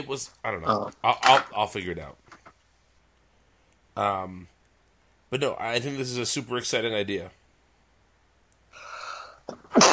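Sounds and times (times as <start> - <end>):
speech: 0.0 - 2.2, 4.0 - 4.5, 5.3 - 7.4
person sneezing: 9.5 - 9.9.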